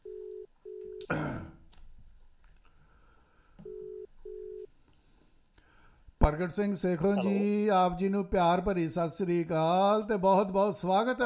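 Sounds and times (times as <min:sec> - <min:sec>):
telephone ringing tone as a call is placed: 0:00.0 - 0:01.0, 0:03.6 - 0:04.7
speech: 0:06.3 - 0:11.2.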